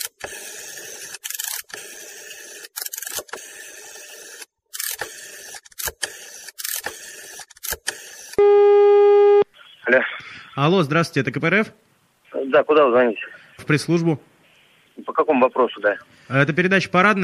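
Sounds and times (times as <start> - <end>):
telephone number being dialed with mechanical whirring clicks: 0.0 - 8.4
steady electronic tone on a telephone line: 8.4 - 9.5
speech: 9.9 - 11.8, 12.6 - 14.3, 15.2 - 17.2.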